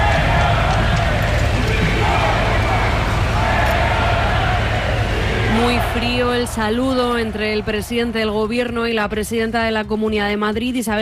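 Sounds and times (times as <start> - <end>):
crowd of spectators booing and shouting insults: 0.0 - 8.7
speech: 6.0 - 10.9.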